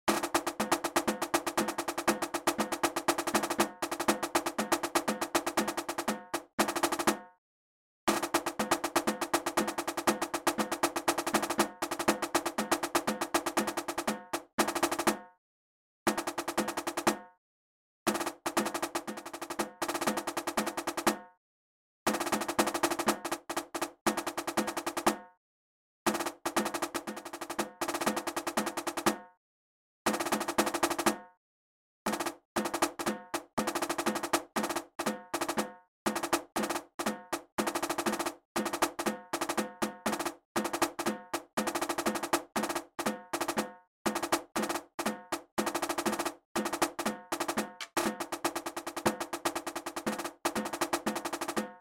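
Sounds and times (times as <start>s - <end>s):
moving drums: 0.0s - 7.4s, 8.1s - 15.4s, 16.1s - 17.4s, 18.1s - 21.4s, 22.1s - 25.3s, 26.1s - 29.4s, 30.1s - 31.4s, 32.1s - 51.7s.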